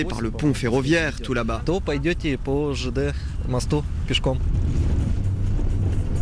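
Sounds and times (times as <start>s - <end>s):
speech: 0.0s - 4.8s
old rusty ferry boat engine rumbling while crossing a river: 0.0s - 6.1s
wind noise: 3.2s - 6.1s.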